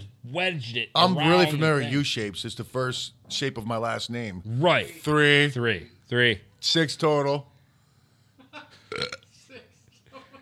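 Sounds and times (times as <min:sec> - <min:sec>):
speech: 0:00.3 - 0:07.5
loud burp: 0:08.9 - 0:09.3.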